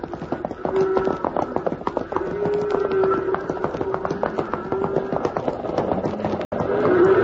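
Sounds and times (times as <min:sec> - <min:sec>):
cattle stampede hoofbeats: 0:00.0 - 0:07.2.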